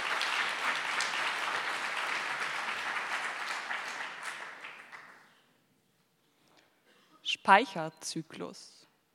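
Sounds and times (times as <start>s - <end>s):
crowd applause: 0.0s - 5.3s
scattered claps: 0.0s - 5.3s
speech: 7.4s - 8.8s.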